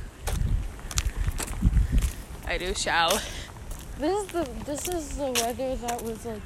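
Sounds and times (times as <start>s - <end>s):
strong wind buffeting the microphone: 0.0s - 3.1s
speech: 2.5s - 3.4s, 4.0s - 6.4s.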